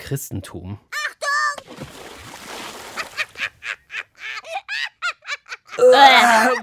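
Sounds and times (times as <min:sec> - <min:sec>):
water splashing onto a person: 0:01.6 - 0:03.6
person squealing, yelping and shrieking: 0:05.8 - 0:06.6.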